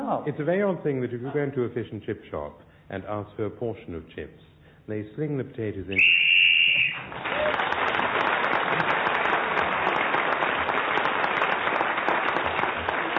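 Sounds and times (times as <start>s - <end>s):
speech: 0.1s - 6.2s
referee's whistle blast ending a timed round: 5.9s - 7.1s
audience applause: 6.8s - 13.1s.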